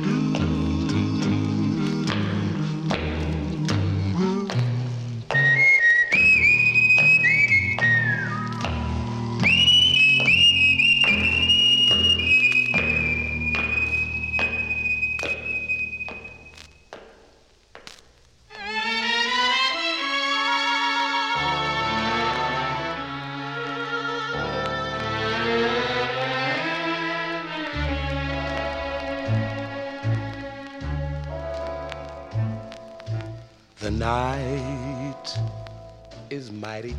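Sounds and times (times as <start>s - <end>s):
instrumental music with a steady beat: 0.0s - 36.9s
person whistling a sustained wavering high melody: 5.3s - 16.4s.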